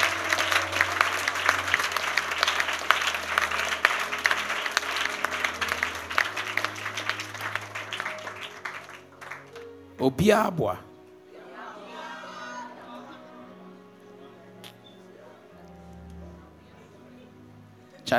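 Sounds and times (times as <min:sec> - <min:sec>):
congregation clapping hands: 0:00.0 - 0:10.5
speech: 0:10.0 - 0:10.9.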